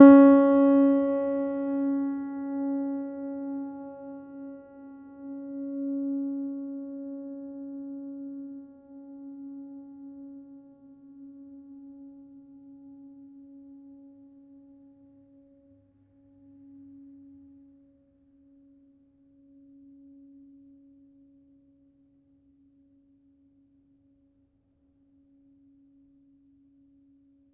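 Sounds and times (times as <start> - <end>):
piano note with pedal: 0.0 - 8.9.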